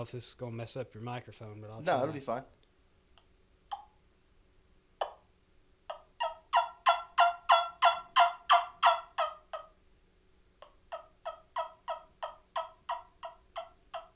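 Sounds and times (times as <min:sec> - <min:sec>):
speech: 0:00.0 - 0:02.6
suction-style turkey call clucks: 0:05.0 - 0:05.2, 0:05.9 - 0:09.8, 0:10.6 - 0:14.1.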